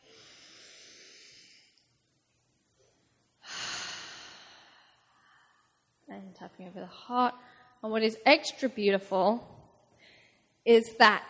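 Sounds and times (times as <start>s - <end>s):
deep breathing during guided group breathing exercise: 0.0s - 1.8s, 3.4s - 5.9s
speech: 6.2s - 9.5s, 10.6s - 11.2s.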